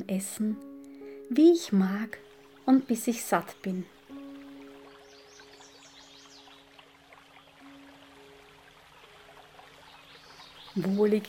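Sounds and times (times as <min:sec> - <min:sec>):
speech: 0:00.0 - 0:00.7, 0:01.3 - 0:04.0, 0:10.8 - 0:11.2
birds chirping: 0:01.6 - 0:11.2
river flowing through a forest: 0:03.8 - 0:11.2.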